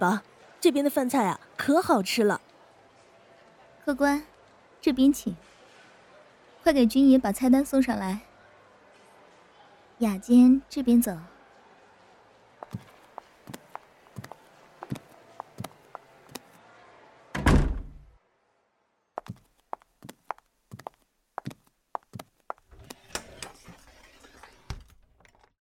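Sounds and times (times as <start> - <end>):
speech: 0.0 - 2.5, 3.9 - 5.5, 6.6 - 8.3, 10.0 - 11.3
footstep-like knocks: 12.6 - 16.4, 19.2 - 23.0
door closing with a heavy thud in a restaurant: 17.3 - 18.1.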